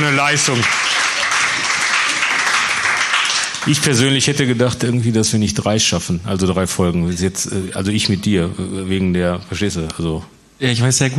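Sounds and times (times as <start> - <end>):
live audience clapping at a podcast recording: 0.0 - 4.4
speech: 0.1 - 1.2, 3.6 - 11.1.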